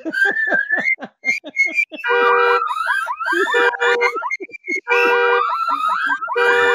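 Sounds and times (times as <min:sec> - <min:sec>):
laughter: 0:00.0 - 0:06.7
burglar alarm siren: 0:02.0 - 0:06.7.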